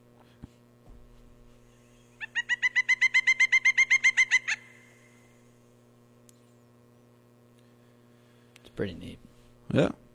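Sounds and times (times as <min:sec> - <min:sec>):
steady low electrical hum: 0:00.0 - 0:10.1
pileated woodpecker calling: 0:01.7 - 0:05.4
speech: 0:08.8 - 0:10.0.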